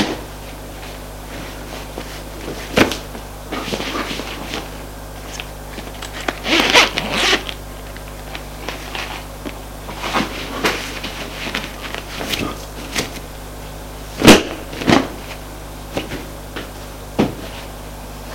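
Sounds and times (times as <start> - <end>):
low, steady hum: 0.0 - 18.3
clothing zipper pulled as a person undresses: 6.2 - 7.6.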